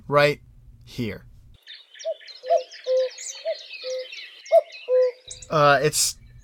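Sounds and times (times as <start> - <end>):
speech: 0.1 - 1.3, 5.5 - 6.2
male common cuckoo two-note call: 1.6 - 6.4
small birds chirping faintly: 1.6 - 6.4.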